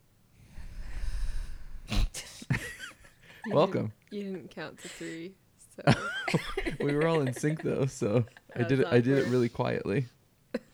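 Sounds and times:
deep breathing into the microphone: 0:00.4 - 0:02.1
sharp snorting breath bursts: 0:00.4 - 0:02.5
laughter: 0:02.5 - 0:03.9, 0:05.8 - 0:09.8
speech: 0:03.5 - 0:10.2.

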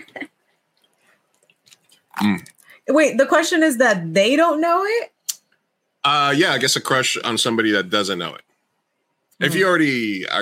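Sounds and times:
faint wet mouth clicks: 0:01.3 - 0:02.7, 0:05.3 - 0:05.6
person sipping water: 0:01.3 - 0:02.7
soft swallowing sounds: 0:01.4 - 0:02.7
speech: 0:02.2 - 0:05.1, 0:06.0 - 0:08.4, 0:09.4 - 0:10.4.

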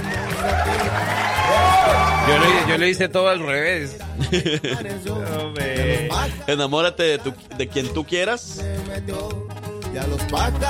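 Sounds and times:
applause: 0:00.0 - 0:02.7
crowd cheering and whooping: 0:00.0 - 0:02.8
speech: 0:02.3 - 0:10.6
laughter: 0:04.1 - 0:05.2.

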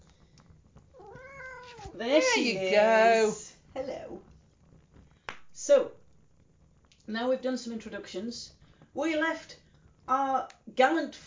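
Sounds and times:
soft shuffling and scrabbling: 0:00.0 - 0:05.2
domestic cat meowing: 0:01.0 - 0:02.0
speech: 0:02.0 - 0:04.2, 0:05.6 - 0:06.0, 0:07.1 - 0:11.2.

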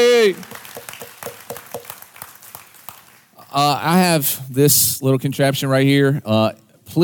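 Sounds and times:
audience clapping hands: 0:00.0 - 0:03.4
speech: 0:00.2 - 0:00.6, 0:03.6 - 0:07.0.

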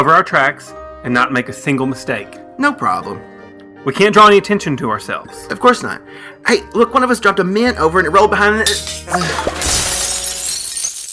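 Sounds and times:
speech: 0:00.0 - 0:09.8
crystal vase shattering: 0:08.7 - 0:11.1
tinkling crystal shards: 0:08.7 - 0:11.1.

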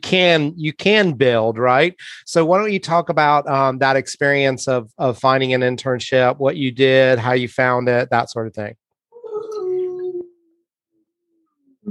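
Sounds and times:
speech: 0:00.1 - 0:08.8
sleeping dog whimpering and howling: 0:09.2 - 0:10.3.

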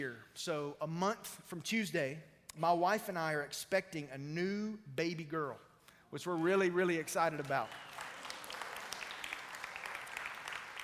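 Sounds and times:
speech: 0:00.0 - 0:08.0
audience applauding with dense overlapping hand claps: 0:06.4 - 0:10.8.

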